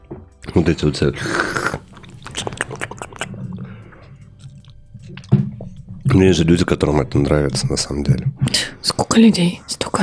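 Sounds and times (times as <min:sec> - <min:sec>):
speech: 0:00.5 - 0:01.6, 0:06.2 - 0:10.0
loud wet smacking chewing: 0:01.3 - 0:06.2.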